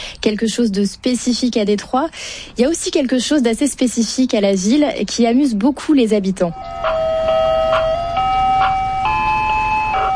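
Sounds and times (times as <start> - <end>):
faint rumble of traffic: 0.0 - 10.1
speech: 0.2 - 7.2
tinny electronic ice cream truck jingle in Detroit in summer: 6.5 - 10.1.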